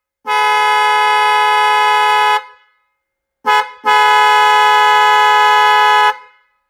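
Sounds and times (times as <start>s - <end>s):
red 12V two-tone snail horn: 0.2s - 2.6s, 3.5s - 6.4s.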